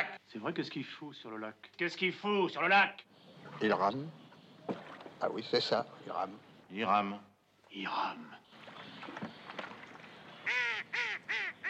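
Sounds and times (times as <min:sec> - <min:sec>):
speech: 0:00.3 - 0:08.4
ducks quacking on a lake: 0:10.1 - 0:11.6.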